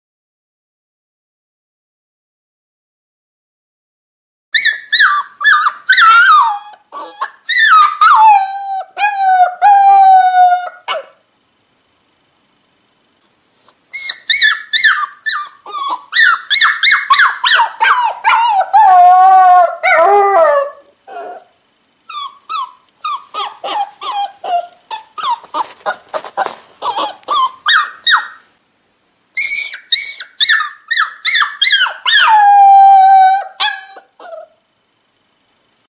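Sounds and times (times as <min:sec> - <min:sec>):
puppy crying: 0:04.6 - 0:11.2, 0:13.2 - 0:28.5, 0:29.4 - 0:34.6.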